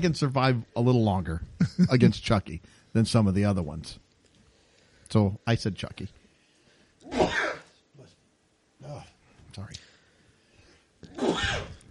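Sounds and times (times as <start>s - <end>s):
speech: 0.0s - 4.0s, 5.1s - 6.2s, 8.9s - 9.8s
sneeze: 7.0s - 7.8s, 11.1s - 11.8s.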